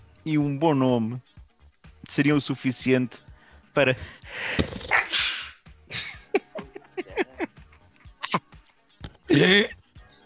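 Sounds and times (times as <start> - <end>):
speech: 0.2 - 1.3, 2.1 - 5.3, 9.4 - 9.8
person sneezing: 4.8 - 6.1
laughter: 5.9 - 8.4.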